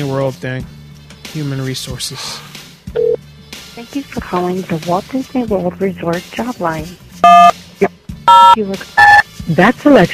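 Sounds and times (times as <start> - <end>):
speech: 0.0 - 3.0, 3.8 - 10.1
touch-tone beep from a phone keypad: 7.2 - 7.5, 8.3 - 9.2.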